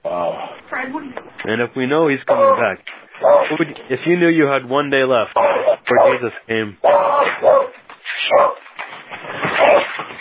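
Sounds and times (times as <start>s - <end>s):
speech: 0.2s - 7.6s, 8.3s - 8.6s
excited dog barking and yelping: 2.3s - 3.7s, 5.4s - 8.8s, 9.5s - 10.0s.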